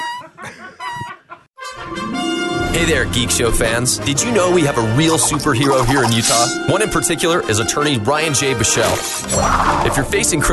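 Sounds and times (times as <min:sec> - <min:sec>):
speech: 0:02.8 - 0:10.5
chicken clucking: 0:05.2 - 0:06.4.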